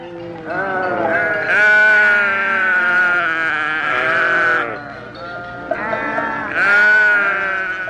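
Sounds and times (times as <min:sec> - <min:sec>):
sheep and lambs bleating: 0:00.0 - 0:04.9, 0:05.5 - 0:07.8.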